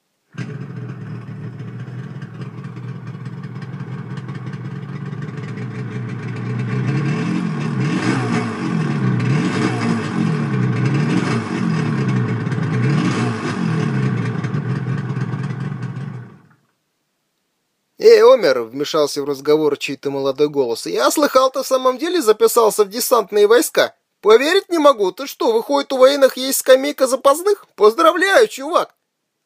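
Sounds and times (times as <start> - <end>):
truck engine rattling and rumbling: 0.4 - 16.5
speech: 18.4 - 29.0.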